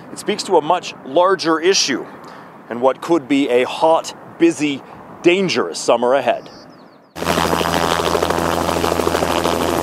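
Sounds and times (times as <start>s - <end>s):
speech: 0.1s - 6.6s
helicopter bucketing water onto a wildfire in steep terrain above Highway 3: 7.2s - 9.8s.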